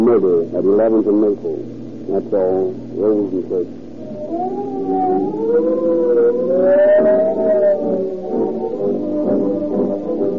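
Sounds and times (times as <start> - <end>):
speech: 0.2 - 5.9
police siren wailing: 4.0 - 10.3.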